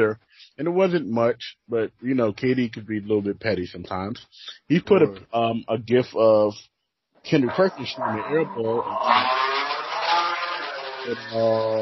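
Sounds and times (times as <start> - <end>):
speech: 0.0 - 9.6, 11.0 - 11.8
racing car engines roaring and revving outside a house: 7.4 - 11.8.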